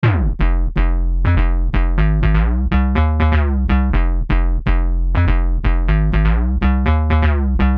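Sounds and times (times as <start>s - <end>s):
bass loop in F minor: 0.0s - 7.7s.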